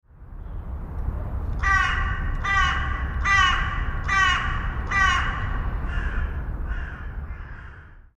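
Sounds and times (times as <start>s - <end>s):
low rumbling background noise: 0.1s - 8.1s
carrion crow Corvus corone cawing: 1.6s - 8.1s.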